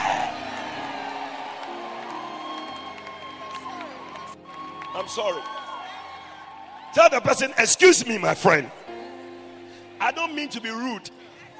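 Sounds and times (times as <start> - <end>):
whoops and shouted voices: 0.0 - 8.8
audience cheering and applauding: 0.0 - 11.5
speech: 5.0 - 5.6, 6.9 - 8.8, 10.1 - 11.2.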